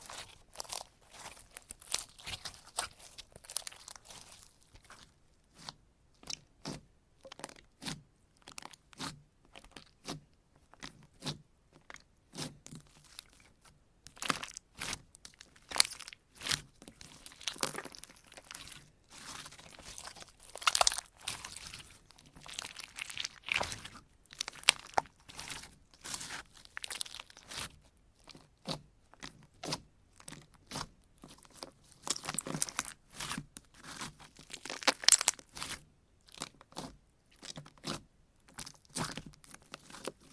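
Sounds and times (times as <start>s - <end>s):
slime squished by hand crackling and popping: 0.0s - 5.0s, 14.1s - 28.4s, 31.4s - 35.8s
soft sticky slime squelches: 0.0s - 40.3s.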